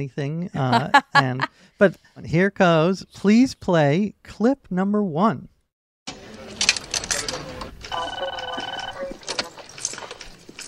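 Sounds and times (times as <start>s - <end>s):
speech: 0.0s - 5.5s
telephone ringing with a steady electronic tone: 7.9s - 9.3s.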